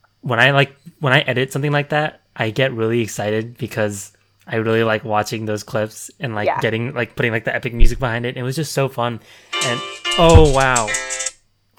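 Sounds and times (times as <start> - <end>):
speech: 0.2 - 11.3
phone alarm electronic tone: 9.5 - 11.3.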